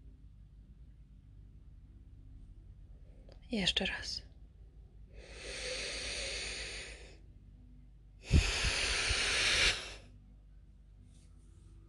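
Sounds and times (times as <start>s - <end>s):
speech: 3.5s - 4.3s
deep breath in and out during a breathing exercise: 5.1s - 7.3s, 8.2s - 10.2s.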